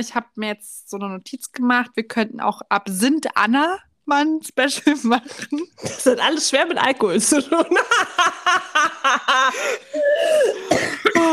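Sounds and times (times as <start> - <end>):
speech: 0.0 - 11.3
person coughing: 5.3 - 6.2, 9.5 - 11.3
laughter: 7.2 - 9.9.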